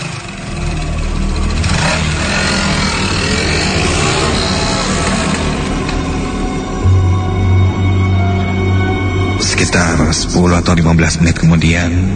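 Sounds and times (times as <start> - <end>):
motorcycle engine revving and pulling away at night: 0.0 - 9.4
speech: 9.8 - 12.1.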